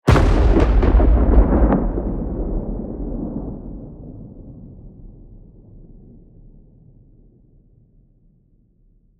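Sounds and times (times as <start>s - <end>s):
distant thunder explosion: 0.1s - 6.3s.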